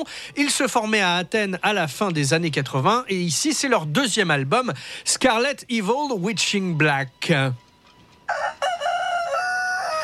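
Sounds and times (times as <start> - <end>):
speech: 0.0 - 7.6
rooster crowing: 8.3 - 10.0.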